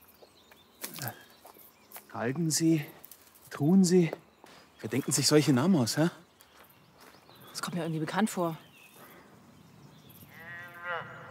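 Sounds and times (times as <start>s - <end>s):
speech: 2.2s - 3.0s, 3.6s - 4.2s, 4.8s - 6.2s, 7.6s - 8.7s
drawn-out cow-like moo on a moor: 10.3s - 11.3s.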